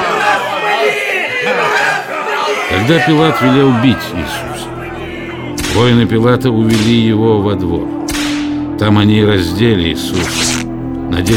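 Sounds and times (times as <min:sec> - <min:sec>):
dense crowd shouting loudly: 0:00.0 - 0:05.6
speech: 0:02.9 - 0:04.5, 0:05.8 - 0:08.0, 0:08.8 - 0:11.3.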